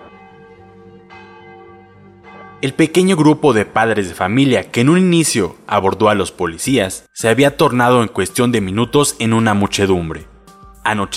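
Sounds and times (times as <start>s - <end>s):
church bells pealing: 0.0s - 5.7s
speech: 2.6s - 11.1s.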